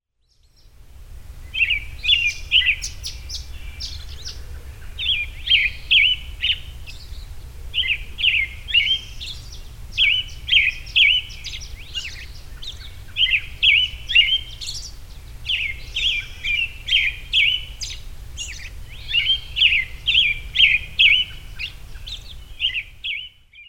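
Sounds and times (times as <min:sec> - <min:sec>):
birds singing in the morning: 0:00.1 - 0:23.6.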